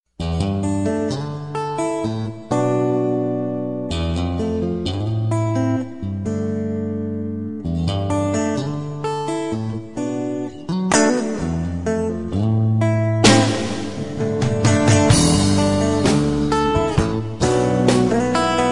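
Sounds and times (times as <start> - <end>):
tender guitar: 0.2 - 18.7.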